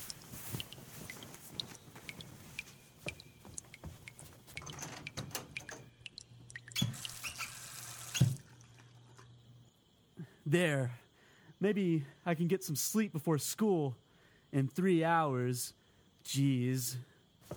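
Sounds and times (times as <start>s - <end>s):
leaky faucet dripping: 0.0s - 9.3s
low hum: 0.0s - 17.5s
speech: 10.5s - 11.0s, 11.6s - 17.1s.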